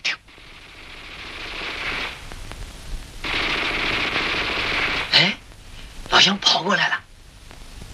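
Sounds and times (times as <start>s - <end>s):
Japanese Type 11 light machine gun firing in a wartime battle: 0.3s - 2.3s, 3.2s - 5.4s
speech: 6.2s - 7.0s.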